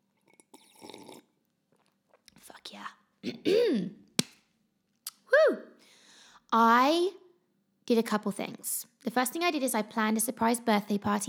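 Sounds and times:
short wet slurp of coffee: 0.3s - 1.3s
speech: 2.7s - 4.0s, 6.5s - 7.2s, 7.9s - 11.2s.

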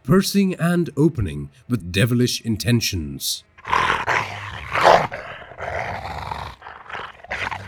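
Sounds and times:
speech: 0.0s - 3.5s
dogs growling and snarling inside a house: 3.6s - 7.6s.

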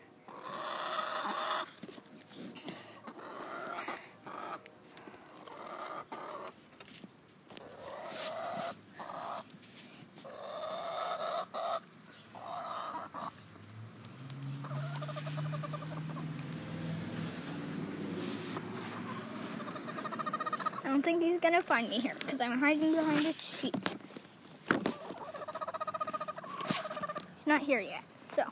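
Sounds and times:
chickens clucking and squawking: 0.2s - 6.7s, 7.6s - 9.6s, 10.2s - 13.6s, 14.4s - 23.2s, 24.7s - 27.6s
low engine-like hum: 13.1s - 20.8s
speech: 21.0s - 24.0s, 27.5s - 28.4s.

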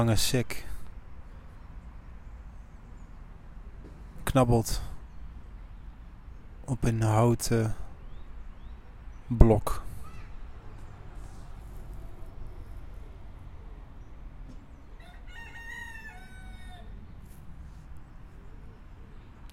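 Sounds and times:
speech: 0.0s - 0.7s, 4.3s - 4.9s, 6.7s - 7.8s, 9.3s - 9.8s
rooster crowing: 14.9s - 17.1s.

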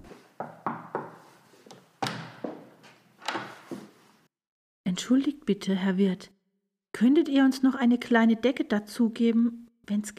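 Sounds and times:
knocking on a wooden door: 0.4s - 1.2s
speech: 5.0s - 6.4s, 7.0s - 10.1s.

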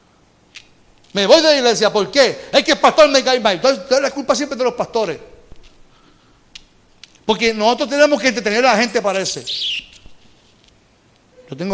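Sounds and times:
speech: 1.1s - 5.3s, 7.3s - 9.9s, 11.5s - 11.7s
small bird chirping: 8.6s - 10.4s.

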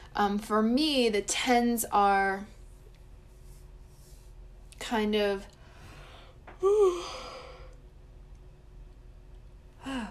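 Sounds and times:
speech: 0.2s - 2.6s, 4.9s - 5.6s, 6.6s - 7.2s
person yawning during a tarot reading: 6.6s - 7.6s.

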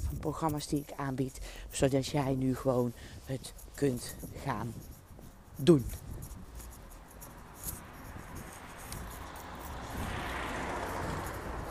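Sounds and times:
speech: 0.2s - 4.9s, 5.6s - 6.1s
loud car passing with engine and tyre noise: 7.2s - 11.6s.

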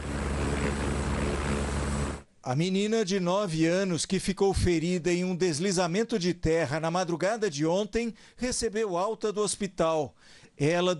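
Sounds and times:
helicopter engine and rotor roar: 0.0s - 2.2s
speech: 2.4s - 10.9s.

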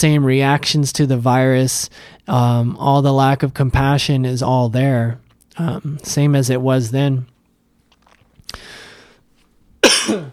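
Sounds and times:
speech: 0.0s - 7.3s, 10.1s - 10.3s
person coughing: 9.8s - 10.3s.

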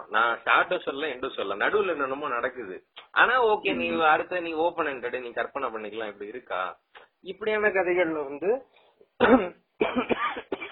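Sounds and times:
speech: 0.1s - 10.5s
person coughing in harsh throaty bursts: 9.2s - 10.7s.

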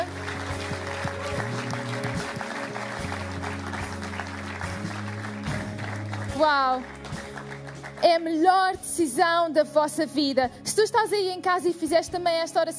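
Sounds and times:
large church audience applauding: 0.0s - 8.3s
sustained keyboard chords: 0.0s - 9.9s
speech: 6.4s - 7.0s, 8.0s - 12.7s.

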